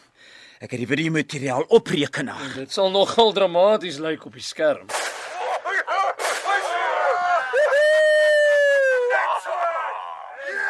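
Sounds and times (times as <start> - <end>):
speech: 0.6 - 5.1
group of police officers cheering and hollering: 5.4 - 10.6.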